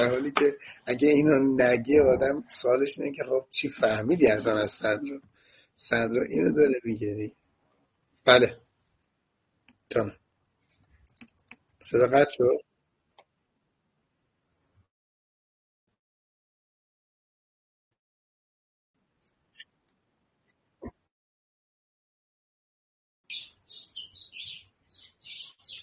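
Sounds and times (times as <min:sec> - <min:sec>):
speech: 0:00.0 - 0:07.4, 0:08.2 - 0:08.6, 0:09.9 - 0:10.2, 0:11.8 - 0:12.7
sparrows chirping: 0:23.3 - 0:25.8.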